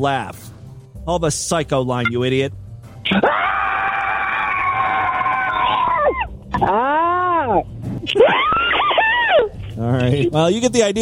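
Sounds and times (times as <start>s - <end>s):
speech: 0.0s - 3.4s, 6.6s - 7.7s, 9.8s - 11.0s
recorded person screaming with telephone-like quality: 3.1s - 7.6s, 8.2s - 9.5s.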